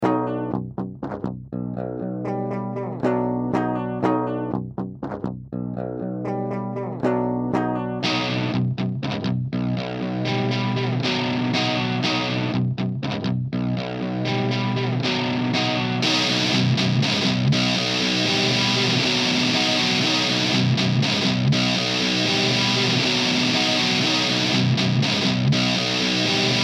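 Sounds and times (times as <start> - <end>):
distortion pedal: 0.0 - 26.6.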